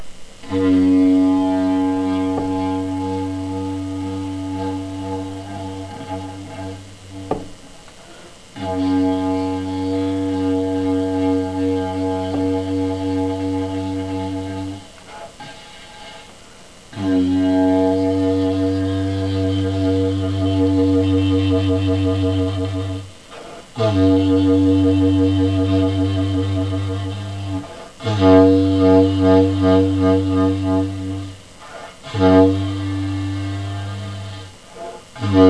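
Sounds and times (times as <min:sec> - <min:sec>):
3ft PVC didgeridoo: 0:00.0 - 0:07.8, 0:08.5 - 0:16.3, 0:16.9 - 0:35.4.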